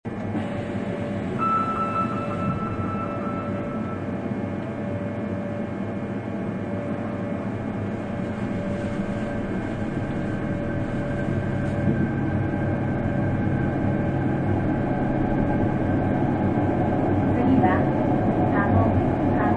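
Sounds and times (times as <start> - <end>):
Hitachi VVVF inverter 3000 series train running from Chayama to Kamo: 0.1 - 19.5
subway noise: 0.1 - 19.5
train door chime: 1.4 - 4.1.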